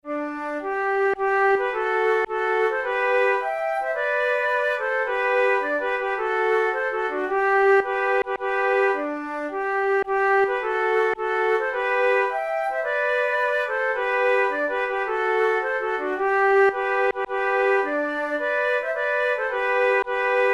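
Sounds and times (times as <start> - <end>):
march played as a duet: 0.1 - 20.5.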